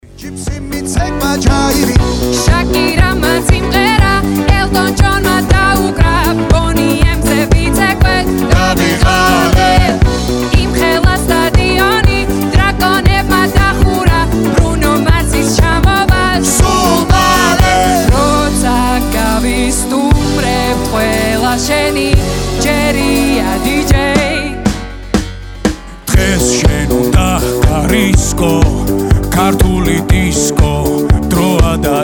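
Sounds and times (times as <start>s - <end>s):
Georgian disco music: 0.0s - 32.0s.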